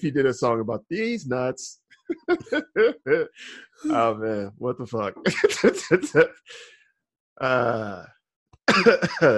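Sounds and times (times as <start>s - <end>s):
speech: 0.0s - 6.8s, 7.4s - 9.3s
man coughing after laughing hard: 2.1s - 4.5s, 5.2s - 6.6s, 8.7s - 9.3s
man laughing: 2.1s - 6.6s, 7.4s - 8.0s, 8.7s - 9.3s.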